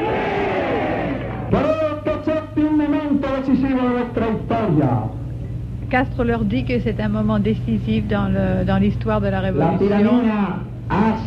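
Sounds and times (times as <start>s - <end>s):
crowd shouting at a rally in Havana Cuba: 0.0s - 1.8s
man speaking loudly to a rally crowd: 1.5s - 5.1s, 9.6s - 11.2s
speech: 3.6s - 5.2s, 5.9s - 11.2s.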